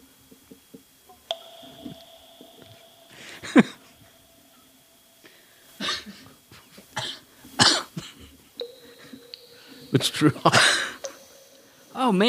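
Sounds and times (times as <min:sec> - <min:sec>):
speech: 0:03.4 - 0:03.8, 0:10.0 - 0:10.8, 0:12.1 - 0:12.2
harsh coughing fit from something caught in the throat in dusty air: 0:07.0 - 0:08.2, 0:10.5 - 0:11.0.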